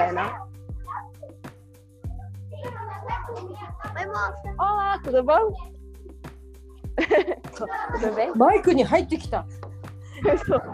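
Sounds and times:
speech: 0.0s - 0.6s, 3.0s - 5.8s, 7.0s - 10.7s
group of children chattering: 2.5s - 5.0s, 7.5s - 8.9s, 10.3s - 10.7s
laughter: 7.0s - 9.1s, 10.1s - 10.7s.

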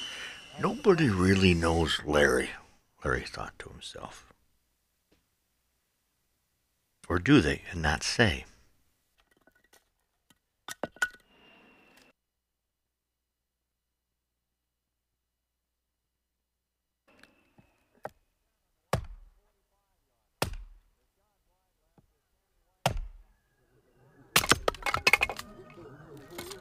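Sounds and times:
speech: 0.6s - 4.3s, 7.1s - 8.5s
axe splitting logs for firewood: 18.9s - 19.3s, 22.8s - 23.2s, 24.3s - 25.5s
clatter of falling wood: 24.3s - 25.5s.

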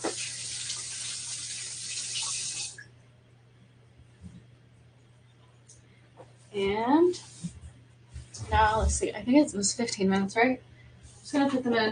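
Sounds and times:
running tap water splashing into a kitchen sink during hand washing: 0.0s - 2.8s
speech: 6.6s - 7.3s, 8.5s - 10.7s, 11.3s - 11.9s.

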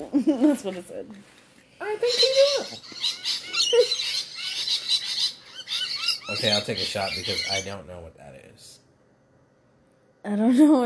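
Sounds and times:
speech: 0.0s - 4.0s, 6.3s - 8.8s, 10.2s - 10.8s
parrots chattering and screeching: 1.8s - 7.9s.

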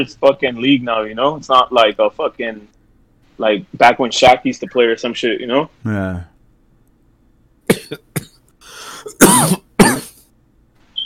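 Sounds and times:
speech: 0.0s - 2.8s, 3.4s - 6.3s, 9.3s - 9.6s
harsh coughing fit after smoking weed: 7.7s - 10.2s
raspy wheezing inhale: 8.6s - 9.2s.

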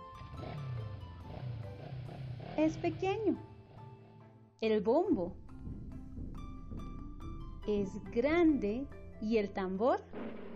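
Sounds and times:
motorcycle engine revving: 0.0s - 4.2s, 10.1s - 10.5s
speech: 2.6s - 3.5s, 4.6s - 5.4s, 7.7s - 10.4s.

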